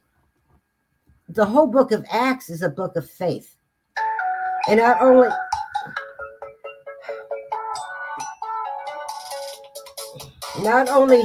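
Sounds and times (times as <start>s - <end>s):
speech: 1.3s - 3.6s, 4.7s - 6.0s, 10.6s - 11.2s
new mobile phone ringtone playing an electronic melody: 4.0s - 10.6s.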